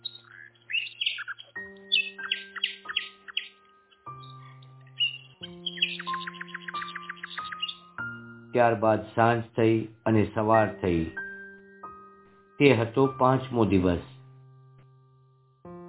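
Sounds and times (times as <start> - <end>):
small songbirds chirping: 0.0 - 8.5
speech: 8.5 - 11.2, 12.6 - 14.1.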